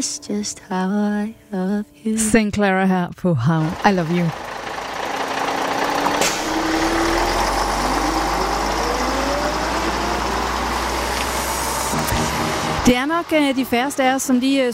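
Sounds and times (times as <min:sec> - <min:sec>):
speech: 0:00.0 - 0:04.5, 0:12.9 - 0:14.7
bus engine accelerating out of the station: 0:03.6 - 0:14.7.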